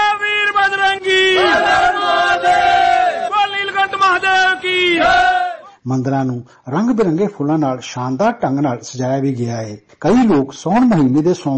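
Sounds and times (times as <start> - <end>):
devotees chanting religious slogans in temples: 0.1 - 5.7
speech: 5.9 - 11.5.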